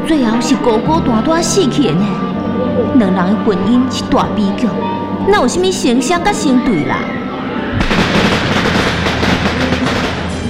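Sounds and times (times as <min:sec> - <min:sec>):
speech: 0:00.1 - 0:07.2
long string of firecrackers crackling: 0:07.8 - 0:10.4.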